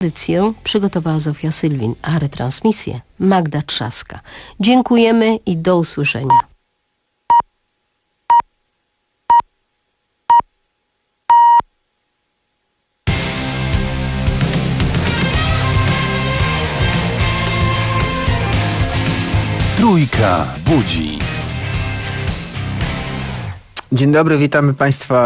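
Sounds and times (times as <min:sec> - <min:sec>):
speech: 0:00.0 - 0:06.5, 0:20.0 - 0:21.3, 0:23.9 - 0:25.2
Polish radio time signal beeps marking four o'clock: 0:06.3 - 0:06.5, 0:11.3 - 0:11.6
loud music: 0:13.1 - 0:23.6.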